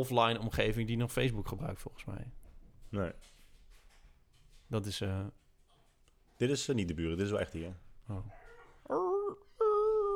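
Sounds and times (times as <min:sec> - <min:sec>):
speech: 0:00.0 - 0:03.4, 0:04.7 - 0:05.4, 0:06.4 - 0:09.4
small dog whimpering: 0:08.3 - 0:10.1.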